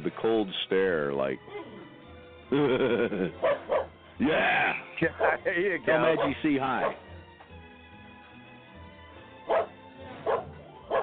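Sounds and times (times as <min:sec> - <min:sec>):
speech: 0:00.3 - 0:01.6, 0:02.5 - 0:07.1
laughter: 0:02.5 - 0:03.5, 0:04.2 - 0:06.4
old dog barking: 0:03.4 - 0:03.9, 0:06.0 - 0:07.0, 0:09.5 - 0:11.0.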